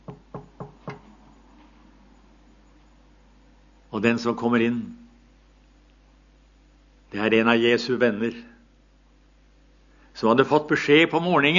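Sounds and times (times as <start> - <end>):
firm knocks on a door: 0.0 - 1.0
speech: 4.0 - 5.0, 7.1 - 8.5, 10.2 - 11.5.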